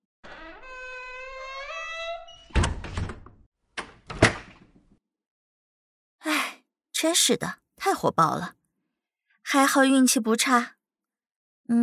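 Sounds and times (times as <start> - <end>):
door hinge creaking: 0.2 - 4.4
speech: 7.0 - 8.6, 9.5 - 10.8.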